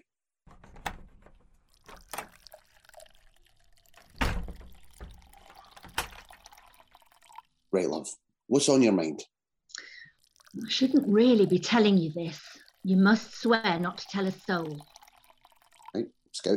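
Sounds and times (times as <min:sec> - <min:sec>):
drink being poured into a glass: 0:01.6 - 0:07.7, 0:09.8 - 0:16.2
speech: 0:07.7 - 0:09.4, 0:10.6 - 0:14.9, 0:15.9 - 0:16.5.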